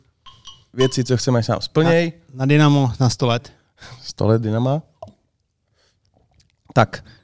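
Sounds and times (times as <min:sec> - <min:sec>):
glasses clinking in a toast: 0:00.3 - 0:02.0
speech: 0:00.7 - 0:04.9, 0:06.8 - 0:07.2.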